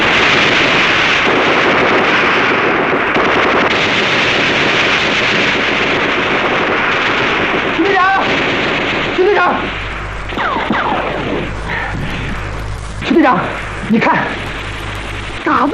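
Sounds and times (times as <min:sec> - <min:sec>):
machine gun firing: 0:00.0 - 0:15.7.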